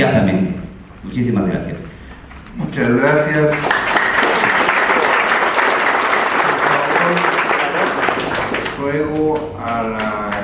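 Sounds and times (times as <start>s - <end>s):
speech: 0.5s - 2.0s, 2.6s - 4.0s, 8.8s - 10.0s
audience applause in a hall at a community hearing: 3.0s - 10.4s.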